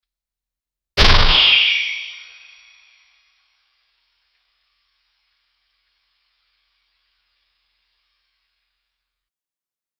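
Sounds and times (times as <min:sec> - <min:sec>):
katana blade swinging: 0:01.0 - 0:03.2.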